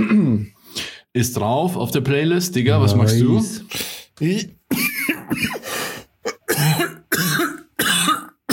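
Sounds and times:
harsh raspy coughing fit: 0.0 - 0.6, 4.7 - 8.5
speech: 1.2 - 4.6, 5.3 - 5.6.

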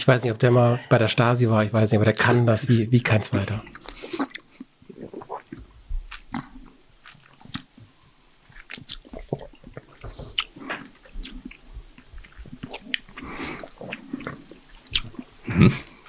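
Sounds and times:
speech: 0.0 - 4.3
people smacking lips while tasting wine: 3.4 - 7.9, 8.5 - 16.0.

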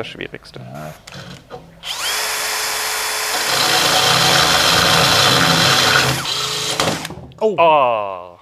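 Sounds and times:
speech: 0.0 - 2.0, 7.4 - 8.3
power drill drilling: 1.1 - 7.2.

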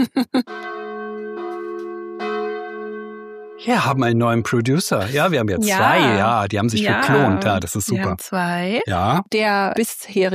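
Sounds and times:
speech: 0.0 - 0.6, 3.6 - 10.3
wedding church bells ringing: 0.5 - 3.6
laughter: 3.7 - 8.2, 8.9 - 9.2.

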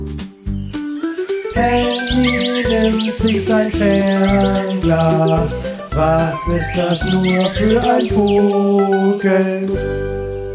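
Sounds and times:
bright bird chirps and tweets from a bird-watching button: 0.4 - 8.8
speech: 1.6 - 10.2.

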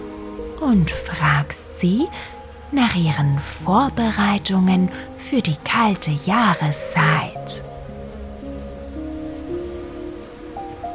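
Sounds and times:
bee buzzing: 0.0 - 10.9
speech: 0.6 - 7.7.

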